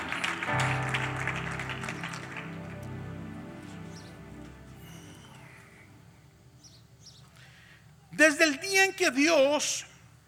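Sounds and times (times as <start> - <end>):
audience applauding: 0.0 - 3.3
sustained keyboard or organ chords: 0.0 - 8.4
speech: 8.2 - 9.9.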